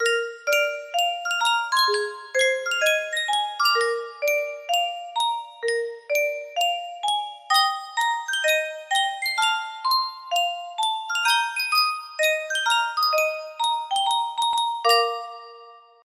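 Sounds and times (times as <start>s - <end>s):
music box: 0.0s - 16.0s.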